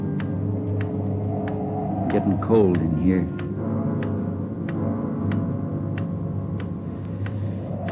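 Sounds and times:
low rumbling hum: 0.0s - 5.3s
clock ticking: 0.1s - 7.9s
speech: 2.1s - 3.5s.

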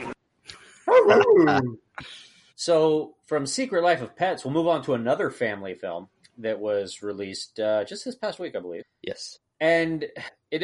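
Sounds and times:
person imitating dog barks: 0.8s - 1.8s
speech: 1.0s - 10.6s.

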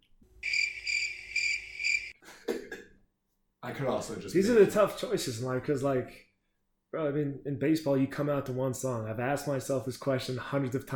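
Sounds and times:
crickets chirping: 0.4s - 2.2s
speech: 3.7s - 6.3s, 6.9s - 10.9s.

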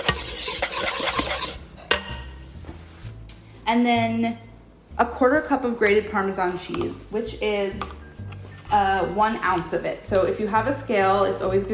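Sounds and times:
metal whisk stirring lemon juice and black pepper sauce: 0.0s - 1.6s
speech: 3.7s - 8.0s, 8.7s - 11.7s.

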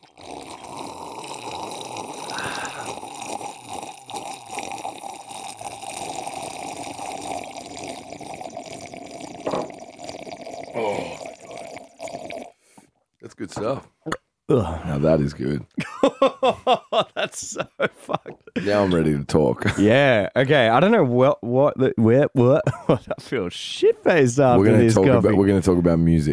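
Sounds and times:
drink pouring into a glass: 0.0s - 12.5s
speech: 13.5s - 26.3s
laughter: 15.8s - 20.1s, 22.4s - 23.6s.

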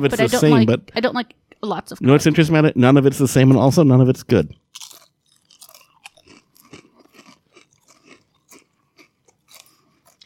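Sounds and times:
speech: 0.0s - 4.8s
chewing crunchy sauerkraut-flavoured potato chips: 4.5s - 10.2s.

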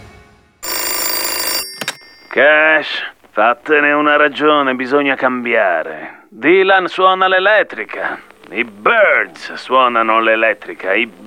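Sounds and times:
telephone bell ringing: 0.6s - 3.1s
speech: 2.4s - 11.2s.

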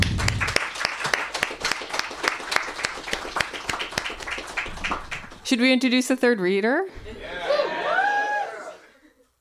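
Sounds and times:
audience applause in a room full of people: 0.0s - 5.5s
speech: 5.5s - 7.2s
laughter: 7.0s - 9.3s.

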